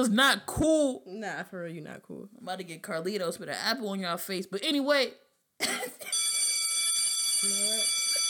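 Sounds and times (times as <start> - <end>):
speech: 0.0 - 6.2, 7.4 - 8.0
school bell ringing: 6.1 - 8.2.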